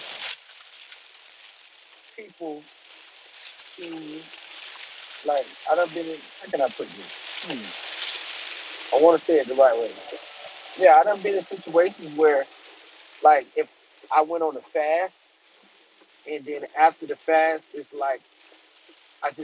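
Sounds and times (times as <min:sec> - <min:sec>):
rain falling outside: 0:00.0 - 0:19.4
speech: 0:02.2 - 0:02.8, 0:03.8 - 0:04.4, 0:05.2 - 0:07.8, 0:08.9 - 0:10.1, 0:10.8 - 0:12.6, 0:13.2 - 0:15.2, 0:16.2 - 0:18.3, 0:19.2 - 0:19.4.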